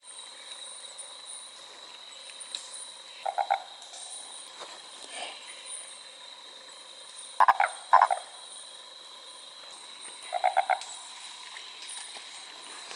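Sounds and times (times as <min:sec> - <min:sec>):
Fleay's barred frog Mixophyes fleayi calling in pulsed notes: 0:03.2 - 0:03.8, 0:07.4 - 0:08.5, 0:10.2 - 0:11.1.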